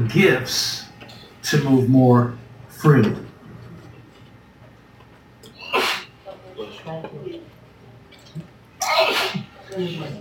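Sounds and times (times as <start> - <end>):
speech: 0.0 - 0.8, 1.4 - 3.3, 9.8 - 10.1
person sneezing: 5.6 - 6.2, 8.8 - 9.6.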